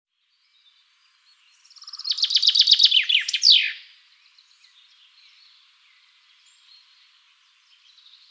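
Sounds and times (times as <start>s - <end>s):
common chaffinch song, Fringilla coelebs: 0.1s - 8.2s.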